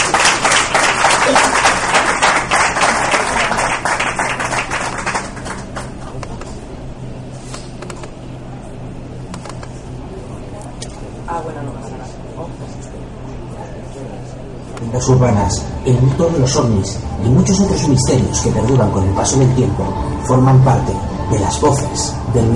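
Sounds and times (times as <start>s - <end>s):
group applauding enthusiastically: 0.0s - 6.4s
speech: 15.1s - 22.5s.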